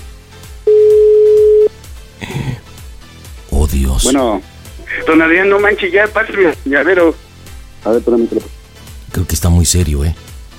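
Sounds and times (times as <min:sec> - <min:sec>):
steady telephone tone on a call failing to connect: 0:00.7 - 0:01.7
speech: 0:03.7 - 0:04.5, 0:05.1 - 0:07.2, 0:07.8 - 0:08.4, 0:09.2 - 0:10.3.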